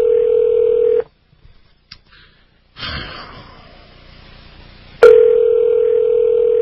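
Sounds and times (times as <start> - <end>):
telephone dial tone: 0.0 - 1.0, 5.0 - 6.6.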